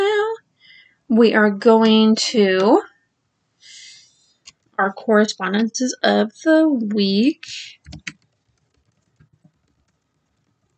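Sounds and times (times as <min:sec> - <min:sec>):
speech: 0:01.1 - 0:02.9, 0:04.8 - 0:08.2
typing on a computer keyboard: 0:07.8 - 0:10.7.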